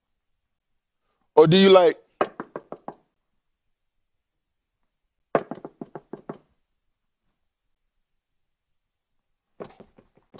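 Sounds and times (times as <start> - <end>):
speech: 1.4 - 2.0
sharp rapid knocking on a door: 2.2 - 3.1, 5.3 - 6.5.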